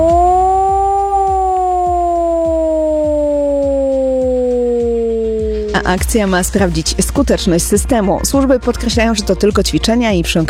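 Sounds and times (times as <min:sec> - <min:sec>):
loud civil defense siren wailing: 0:00.0 - 0:06.7
speech: 0:05.8 - 0:10.4.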